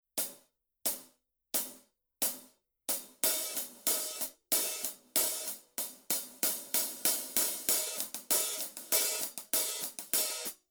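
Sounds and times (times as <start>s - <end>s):
heavy hi-hat pattern: 3.0s - 10.6s.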